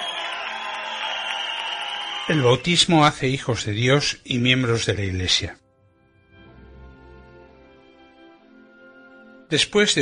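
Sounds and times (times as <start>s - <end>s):
crowd applauding loudly: 0.0s - 3.6s
speech: 2.3s - 5.6s, 9.5s - 9.9s.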